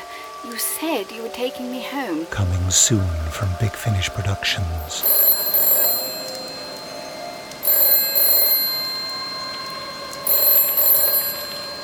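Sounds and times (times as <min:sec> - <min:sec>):
speech: 0:00.4 - 0:05.2
telephone ringing with a bright metallic bell: 0:05.0 - 0:11.8.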